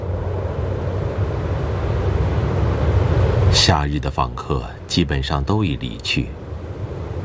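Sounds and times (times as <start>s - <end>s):
wind roaring across open wilderness: 0.0s - 7.2s
speech: 3.6s - 6.4s.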